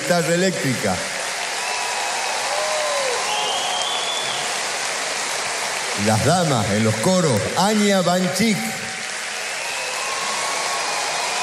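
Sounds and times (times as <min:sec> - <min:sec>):
audience applause: 0:00.0 - 0:11.4
speech: 0:00.1 - 0:01.1, 0:06.0 - 0:09.0
faint audience whistles: 0:03.2 - 0:04.5.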